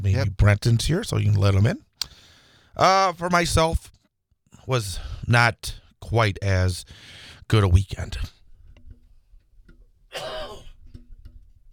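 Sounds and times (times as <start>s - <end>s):
speech: 0.0s - 1.9s, 2.8s - 3.9s, 4.7s - 8.4s, 10.2s - 10.4s
throat-clearing cough: 10.1s - 10.8s.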